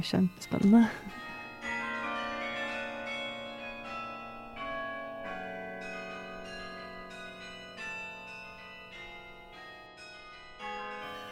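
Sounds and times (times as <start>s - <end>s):
speech: 0.0s - 1.2s
city hall tower carillon bells playing a tune: 0.0s - 11.3s.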